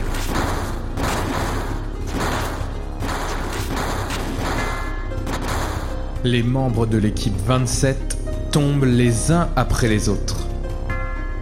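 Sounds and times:
gunfire as soldiers open fire: 0.0s - 6.2s
speech: 6.2s - 10.4s.

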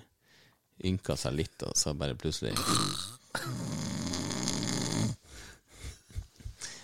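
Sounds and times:
speech: 0.8s - 3.8s
person imitating snoring: 2.5s - 5.2s.

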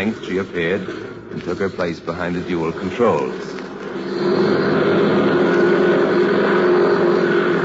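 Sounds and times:
speech: 0.0s - 4.5s
small airplane engine and propeller droning: 3.6s - 7.6s.

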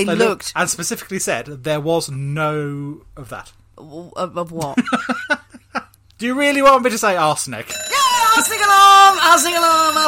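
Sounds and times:
speech: 0.0s - 5.4s, 6.2s - 10.0s
voice imitating a wavering alarm wail: 7.9s - 10.0s.

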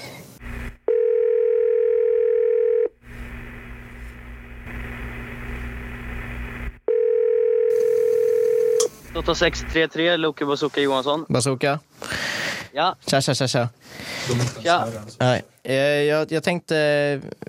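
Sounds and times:
hissing telephone line noise: 0.4s - 0.9s, 3.0s - 6.8s, 8.8s - 9.8s
telephone line tone while a call is placed: 0.9s - 3.0s, 6.8s - 8.9s
speech: 9.2s - 12.1s, 12.7s - 17.4s.

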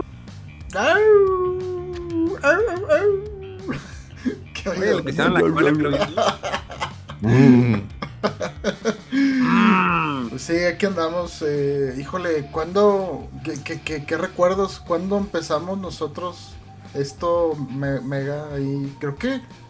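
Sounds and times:
speech: 0.7s - 1.8s, 2.4s - 6.6s, 7.2s - 19.6s
person imitating a wolf howl: 1.0s - 3.7s, 9.4s - 10.2s
laughter: 3.0s - 10.3s.

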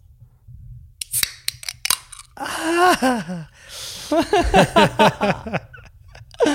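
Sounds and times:
can of strawberry soda being opened in Sweden: 1.0s - 2.4s
speech: 2.4s - 5.7s
laughter: 2.4s - 6.5s.

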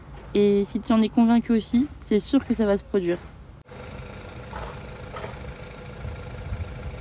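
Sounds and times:
speech: 0.3s - 3.3s
car engine idling: 3.6s - 6.9s.

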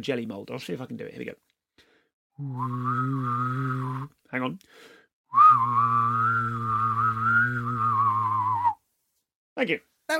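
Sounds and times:
speech: 0.0s - 1.5s, 2.4s - 7.2s, 9.6s - 10.1s
voice imitating a flying saucer by humming and whistling at once: 2.4s - 4.1s, 5.3s - 8.8s.

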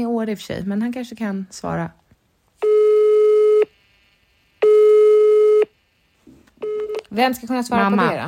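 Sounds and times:
speech: 0.0s - 2.0s, 7.1s - 8.2s
telephone ringing tone while a call is placed: 2.6s - 3.8s, 4.6s - 5.8s, 6.6s - 7.0s.

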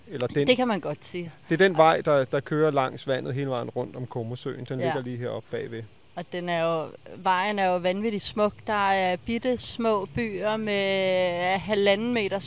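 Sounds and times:
cicadas chirping: 0.0s - 12.4s
speech: 0.1s - 12.4s.

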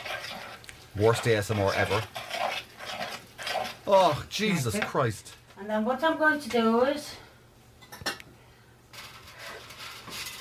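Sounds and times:
utensil scraping a plastic bowl while stirring eggs into mincemeat: 0.0s - 4.9s, 8.9s - 10.3s
speech: 1.0s - 2.2s, 3.9s - 7.2s.

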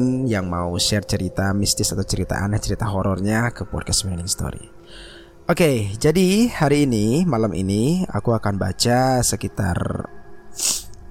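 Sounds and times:
speech: 0.0s - 10.8s
wet nasal sniff from a runny nose due to a cold: 10.6s - 11.0s.

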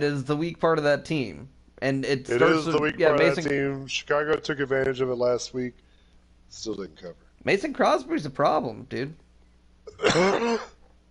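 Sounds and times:
speech: 0.0s - 5.8s, 6.5s - 9.2s, 9.9s - 10.8s
cough into a hand: 9.9s - 10.8s.

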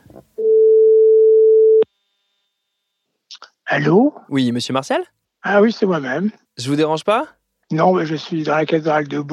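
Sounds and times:
telephone ringback tone of an outgoing call: 0.4s - 1.9s
speech: 3.7s - 9.3s.

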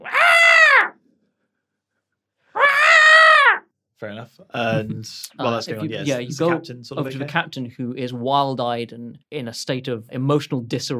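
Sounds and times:
person imitating an ape screeching: 0.0s - 0.9s, 2.6s - 3.6s
speech: 4.0s - 10.9s.

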